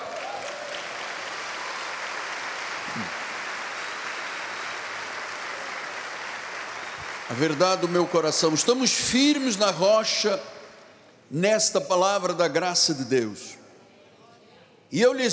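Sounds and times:
audience applause: 0:00.0 - 0:08.8
speech: 0:03.0 - 0:03.2, 0:07.3 - 0:10.6, 0:11.3 - 0:13.6, 0:14.9 - 0:15.3.

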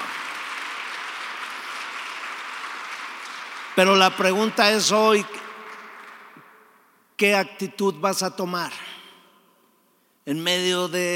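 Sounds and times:
worship audience applauding: 0:00.0 - 0:06.8
speech: 0:03.8 - 0:05.4, 0:07.2 - 0:08.9, 0:10.3 - 0:11.1.

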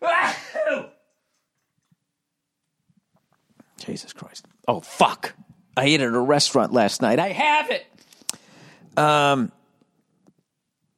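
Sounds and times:
loud sneeze: 0:00.0 - 0:01.1
speech: 0:03.8 - 0:08.0, 0:09.0 - 0:09.6.

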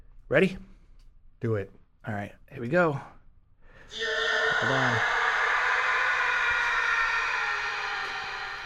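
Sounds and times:
speech: 0:00.3 - 0:00.7, 0:01.4 - 0:03.2, 0:03.9 - 0:05.2
sustained scream sample with heavy reverb and delay: 0:03.9 - 0:08.6.

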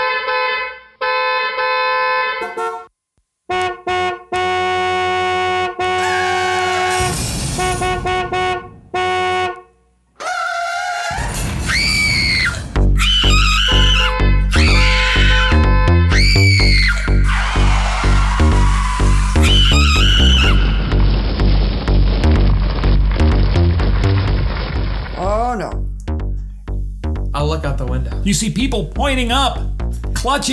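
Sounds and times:
car horns blaring in the street: 0:00.0 - 0:02.9, 0:03.5 - 0:09.9, 0:13.1 - 0:21.9
people screaming and shouting in the street: 0:06.0 - 0:07.1, 0:10.2 - 0:21.1
heavy rumbling din of a chaotic street: 0:06.0 - 0:09.5, 0:11.1 - 0:30.5
speech: 0:28.3 - 0:30.5.

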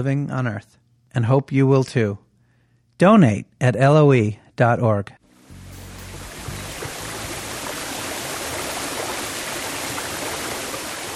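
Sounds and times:
speech: 0:00.0 - 0:02.2, 0:03.0 - 0:05.2
roar of falling water from a waterfall: 0:05.5 - 0:11.1.

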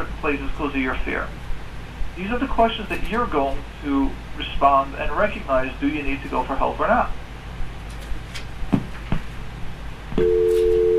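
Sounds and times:
speech: 0:00.2 - 0:01.4, 0:02.2 - 0:07.2
phone line clicks after a dropped call: 0:10.2 - 0:10.9
telephone dial tone: 0:10.2 - 0:10.9.

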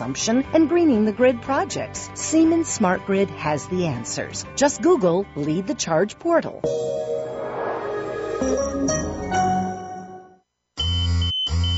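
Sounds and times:
speech: 0:00.0 - 0:07.1
busy tonal electronic sound: 0:06.6 - 0:10.4
electronic pager beeps: 0:10.8 - 0:11.7.

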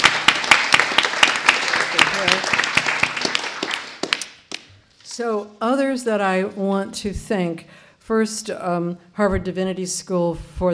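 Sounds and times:
room full of people applauding the volunteers: 0:00.0 - 0:04.7
sharp louder hand claps: 0:00.0 - 0:04.7
speech: 0:05.2 - 0:10.7.

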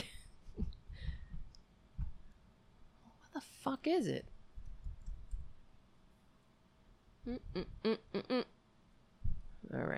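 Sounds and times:
faint hum: 0:00.0 - 0:09.9
speech: 0:03.4 - 0:04.3, 0:07.3 - 0:08.5, 0:09.7 - 0:09.9
quiet clicks: 0:04.6 - 0:05.5.

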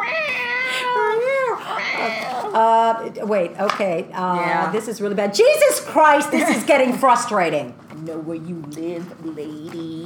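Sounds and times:
cat yowling: 0:00.0 - 0:02.6
speech: 0:02.0 - 0:10.0.

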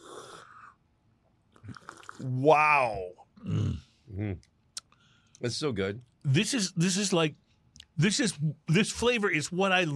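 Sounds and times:
person slurping a sip of drink to aerate it: 0:00.0 - 0:00.8, 0:01.6 - 0:02.3
speech: 0:02.2 - 0:03.6, 0:04.2 - 0:04.5, 0:05.4 - 0:07.4, 0:08.0 - 0:09.9.

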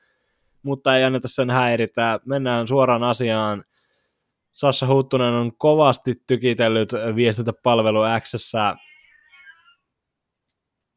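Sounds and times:
speech: 0:00.6 - 0:03.7, 0:04.6 - 0:08.9
cat meowing: 0:08.8 - 0:09.8.

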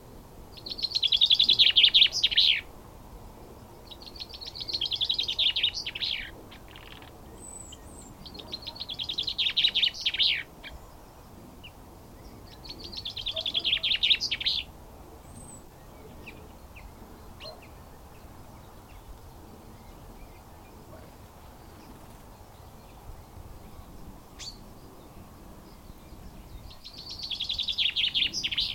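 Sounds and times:
chaffinch Fringilla coelebs singing: 0:00.5 - 0:02.7, 0:03.6 - 0:28.7.

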